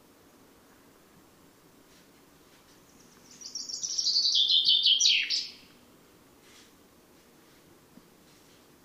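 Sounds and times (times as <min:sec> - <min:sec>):
Common chaffinch Fringilla coelebs singing descending phrase: 0:03.3 - 0:05.6.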